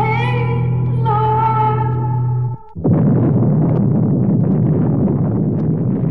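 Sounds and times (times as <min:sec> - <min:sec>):
steady ominous electronic hum: 0:00.0 - 0:06.0
doomsday bomb massive explosion with roaring rumble: 0:02.2 - 0:06.0.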